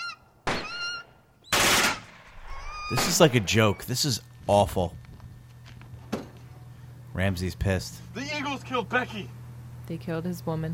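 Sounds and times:
honking goose-like bird calls: 0.0 - 1.1, 2.4 - 3.8
gunshot blasts fired at vultures: 0.4 - 3.7
speech: 2.9 - 5.0, 7.2 - 10.7.

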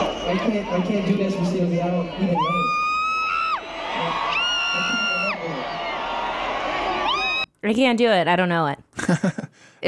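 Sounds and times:
loud concert crowd cheering and screaming: 0.0 - 7.5
speech: 0.3 - 2.9, 7.6 - 9.8
laughter: 4.0 - 5.7, 9.0 - 9.6.

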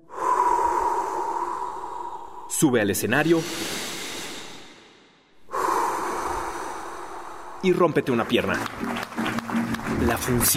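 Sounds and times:
deep breath in: 0.0 - 2.5, 3.2 - 7.6
speech: 2.6 - 4.0, 7.6 - 9.3, 9.9 - 10.5.

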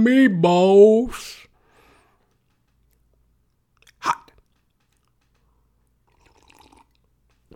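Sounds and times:
speech: 0.0 - 1.4
sipping water with slurp and gulp: 6.0 - 7.5.

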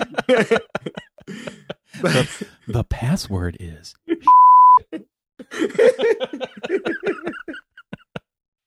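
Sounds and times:
people laughing: 0.0 - 2.6, 5.4 - 8.3
speech: 0.3 - 4.3, 5.5 - 7.3
censor bleep over a spoken word: 4.3 - 4.8.

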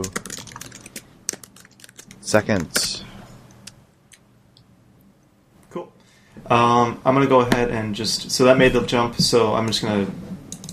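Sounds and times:
typing on a computer keyboard: 0.0 - 2.2, 10.5 - 10.7
speech: 2.3 - 2.8, 6.5 - 10.3.

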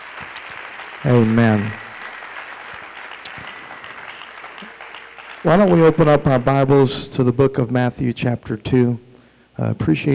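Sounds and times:
large group clapping: 0.0 - 7.3
speech: 1.0 - 1.8, 5.4 - 10.1.

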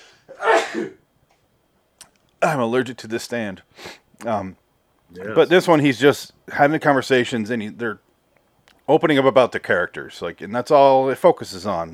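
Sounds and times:
sneeze: 0.0 - 1.0
speech: 0.4 - 1.0, 2.4 - 8.0, 8.9 - 11.9.

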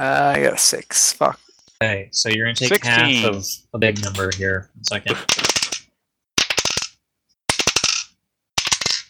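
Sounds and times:
speech: 0.0 - 5.4
handful of dice rattling across a hard surface: 5.3 - 9.0.

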